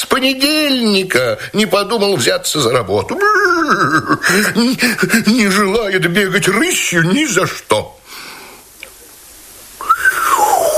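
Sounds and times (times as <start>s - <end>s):
speech: 0.2s - 8.0s
human whistling: 9.8s - 10.6s.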